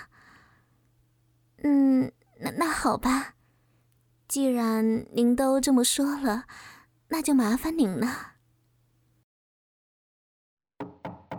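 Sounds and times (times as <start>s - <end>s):
speech: 1.6s - 2.2s, 2.8s - 3.4s, 4.3s - 8.3s
knocking on a home's front door: 10.8s - 11.3s.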